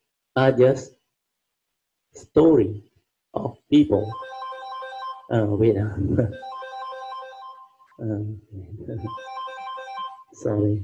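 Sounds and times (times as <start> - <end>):
speech: 0.4 - 1.0, 2.2 - 4.3, 5.3 - 6.5, 8.0 - 9.4, 10.4 - 10.8
mobile phone ringtone with bright tones: 4.0 - 5.5, 6.2 - 8.1, 8.9 - 10.6.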